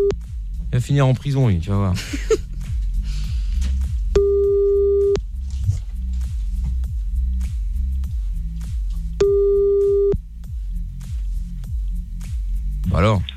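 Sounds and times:
continuous pulsing rhythmic backing: 0:00.0 - 0:13.3
speech: 0:00.7 - 0:02.5, 0:13.0 - 0:13.3
laughter: 0:02.0 - 0:02.5
telephone ringing tone: 0:09.2 - 0:10.2.

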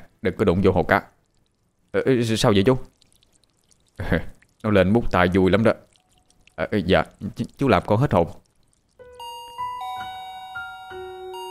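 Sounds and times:
speech: 0:00.2 - 0:01.1, 0:01.9 - 0:02.9, 0:04.0 - 0:05.9, 0:06.6 - 0:08.4
electronic gate bell chime melody: 0:09.2 - 0:11.4.

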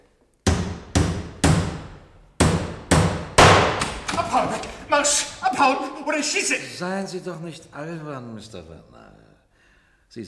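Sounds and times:
hammer pounding a nail: 0:00.4 - 0:05.9
laughter: 0:03.9 - 0:07.4
speech: 0:04.4 - 0:09.2.

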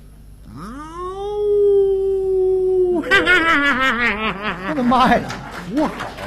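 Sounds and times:
wolf howling: 0:00.5 - 0:03.4
laughter: 0:02.8 - 0:06.2
speech: 0:03.7 - 0:06.2.

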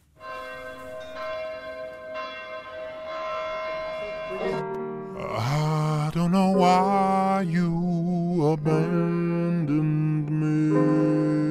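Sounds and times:
church bells ringing at the opening of a pop album track: 0:00.0 - 0:07.6, 0:10.5 - 0:11.4
speech: 0:04.3 - 0:10.0.

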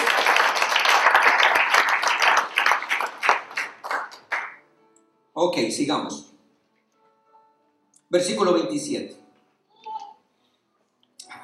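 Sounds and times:
audience applause at a church gathering: 0:00.0 - 0:04.6
speech: 0:05.4 - 0:06.3, 0:08.1 - 0:09.2.

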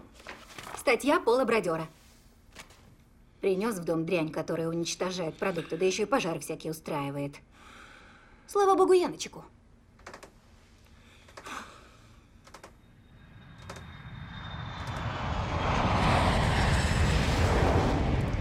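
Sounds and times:
speech: 0:00.8 - 0:02.0, 0:03.4 - 0:07.8, 0:08.5 - 0:09.6
airplane engine roaring at an airport: 0:12.9 - 0:18.3.

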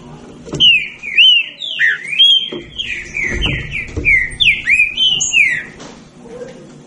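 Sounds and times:
Green-winged saltator song: 0:00.5 - 0:05.8.

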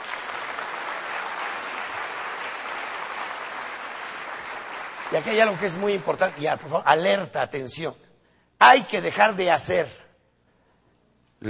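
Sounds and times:
audience applause at a personal development talk: 0:00.0 - 0:06.7
speech: 0:05.1 - 0:08.0, 0:08.6 - 0:10.0.

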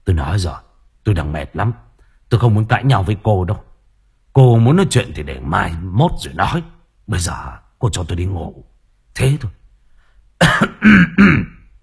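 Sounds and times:
speech: 0:00.1 - 0:03.7, 0:04.4 - 0:09.6, 0:10.4 - 0:11.5
man clearing his throat: 0:10.4 - 0:11.7.

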